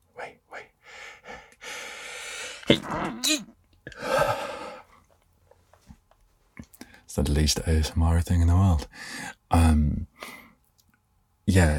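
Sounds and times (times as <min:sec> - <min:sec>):
person sneezing: 0:02.6 - 0:04.4
speech: 0:02.7 - 0:04.2, 0:07.2 - 0:10.4, 0:11.5 - 0:11.7.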